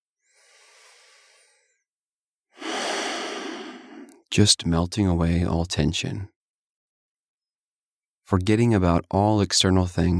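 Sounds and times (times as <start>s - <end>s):
slow deep breathing during a guided relaxation: 0.2s - 1.8s, 2.6s - 4.2s
speech: 4.3s - 6.4s, 8.3s - 10.1s.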